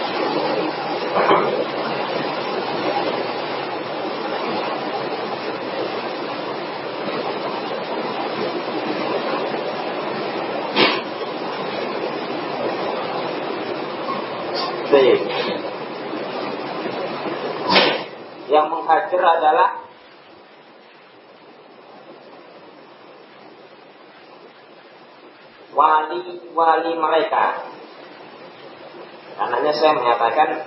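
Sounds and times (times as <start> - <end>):
knocks and splashes in heavy rain: 0.0 - 18.2
heavy rain heard through an open door: 0.0 - 30.6
speech: 19.2 - 19.7, 25.8 - 27.7, 29.4 - 30.6.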